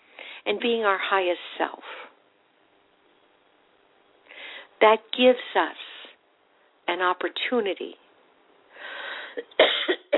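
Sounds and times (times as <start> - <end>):
speech: 0.4 - 2.1, 4.8 - 5.8, 6.9 - 8.0
person coughing: 9.4 - 10.1.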